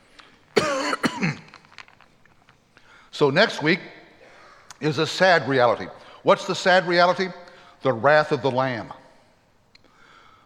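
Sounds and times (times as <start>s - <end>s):
raspy throat clearing: 0.6s - 1.5s
person coughing: 0.6s - 1.6s
speech: 3.2s - 4.0s, 4.8s - 9.0s.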